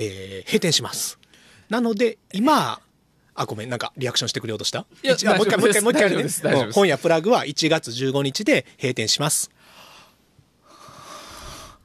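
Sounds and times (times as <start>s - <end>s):
speech: 0.0s - 2.8s, 3.4s - 9.8s
deep breath drawn in sharply in surprise: 9.6s - 11.8s.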